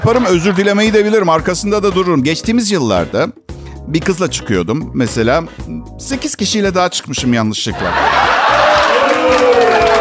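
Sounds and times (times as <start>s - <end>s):
people laughing: 0.0s - 1.3s, 7.8s - 9.0s
speech: 0.0s - 9.9s
live audience booing: 7.8s - 9.9s
people shouting: 8.0s - 9.9s.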